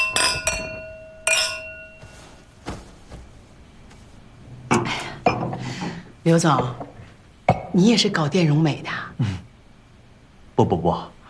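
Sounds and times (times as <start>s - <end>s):
glasses clinking in a toast: 0.0s - 2.3s, 4.7s - 7.8s
speech: 6.2s - 6.8s, 7.7s - 9.4s, 10.6s - 11.2s.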